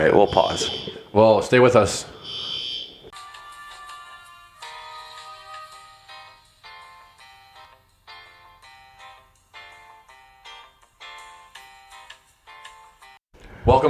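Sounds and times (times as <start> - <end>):
speech: 0.0 - 2.2
apartment building fire alarm test blaring in electronic pulses: 0.0 - 3.1.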